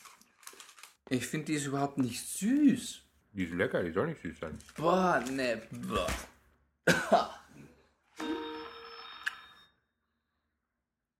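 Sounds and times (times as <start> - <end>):
speech: 1.1 - 6.3, 6.9 - 7.4
telephone ringing with electronic tone: 8.2 - 9.8.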